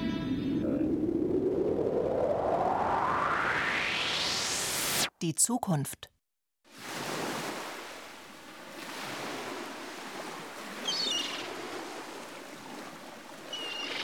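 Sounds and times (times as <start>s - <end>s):
wind gusts: 0.4s - 4.9s, 6.7s - 14.0s
speech: 5.2s - 6.1s
rough sea surf waves breaking: 6.7s - 14.0s.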